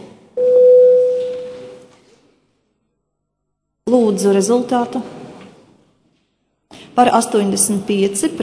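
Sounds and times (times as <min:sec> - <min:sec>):
electronic voting bell tone in the Latvian parliament before a vote on a bill: 0:00.4 - 0:01.8
speech: 0:03.9 - 0:05.2, 0:07.0 - 0:08.4.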